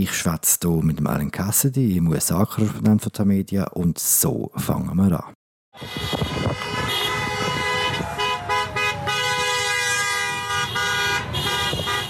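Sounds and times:
speech: 0.0s - 6.7s
many car horns honking: 5.8s - 12.0s
traffic noise: 5.8s - 12.0s.

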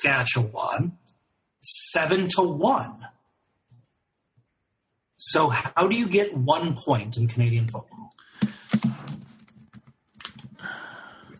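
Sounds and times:
speech: 0.0s - 1.0s, 1.6s - 3.1s, 5.2s - 9.0s
typing on a computer keyboard: 8.7s - 10.6s.

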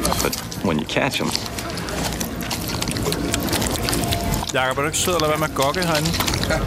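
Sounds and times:
speech: 0.2s - 1.6s, 4.5s - 6.6s
woman messily eating sushi, chewing and slurping: 1.4s - 6.6s.

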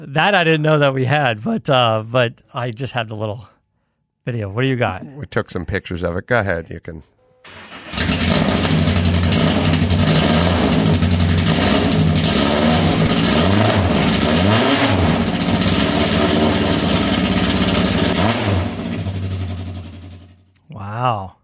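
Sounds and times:
speech: 0.0s - 3.5s, 4.2s - 7.6s, 21.0s - 21.4s
Datsun 510 car engine revving: 7.5s - 20.4s.

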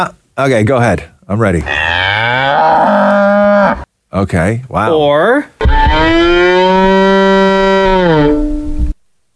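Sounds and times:
speech: 0.0s - 3.0s, 3.7s - 6.6s
bowed violin imitating a cow's moo: 5.6s - 8.7s.

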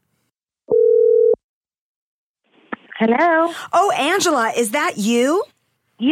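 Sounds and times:
telephone dial tone: 0.7s - 1.4s
speech: 3.0s - 6.1s.

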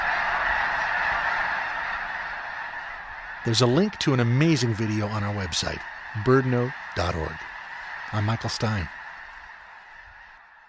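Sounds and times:
huge flock of white snow geese honking in flight: 0.0s - 10.6s
speech: 3.4s - 7.5s, 8.1s - 9.0s.

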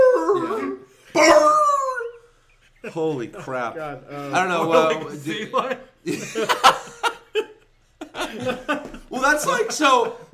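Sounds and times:
man's voice imitating a wrestler's yelping, howling dog sound: 0.0s - 2.2s
laughter: 2.0s - 10.3s
speech: 2.9s - 6.8s, 8.4s - 10.3s.

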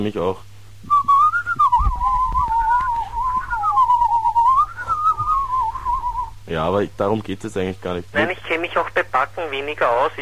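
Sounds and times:
speech: 0.0s - 0.5s, 6.5s - 10.2s
person whistling a melody in two voices: 0.8s - 6.4s
low thumps: 1.0s - 6.4s.

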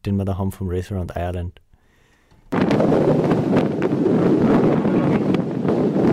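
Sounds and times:
speech: 0.0s - 1.6s
strong wind roaring and buffeting the microphone during a race around Ireland: 2.5s - 6.1s.

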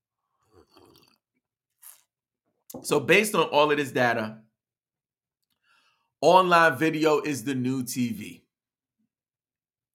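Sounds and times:
slurp of hot coffee: 0.2s - 2.3s
speech: 2.7s - 4.4s, 6.2s - 8.4s.

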